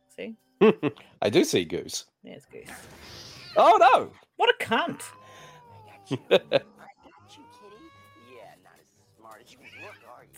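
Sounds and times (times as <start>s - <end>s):
speech: 0.2s - 5.2s, 6.1s - 6.7s
laughter: 0.6s - 1.0s, 6.0s - 6.8s
cat meowing: 4.9s - 6.5s, 7.1s - 8.5s.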